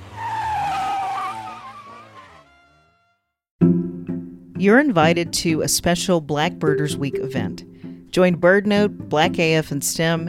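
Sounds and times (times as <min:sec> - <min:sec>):
car tires squealing as a car peels off: 0:00.0 - 0:03.2
speech: 0:04.6 - 0:10.2.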